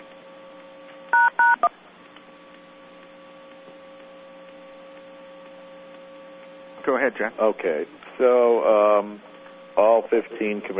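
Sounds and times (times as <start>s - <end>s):
telephone keypad tones for pound and 1 keys: 1.2s - 1.7s
speech: 6.9s - 10.7s.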